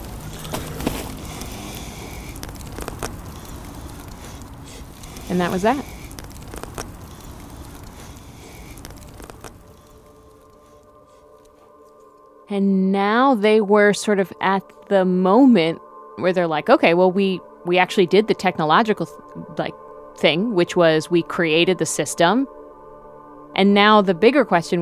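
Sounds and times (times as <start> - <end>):
bonfire crackling and popping: 0.0 - 12.1
speech: 5.3 - 6.0, 12.5 - 22.6, 23.6 - 24.8.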